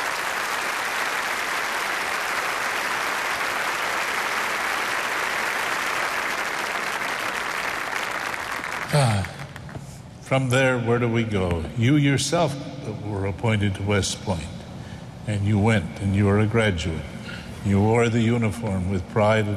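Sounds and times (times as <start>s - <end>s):
audience applause: 0.0s - 9.6s
speech: 10.3s - 14.6s, 15.3s - 19.5s.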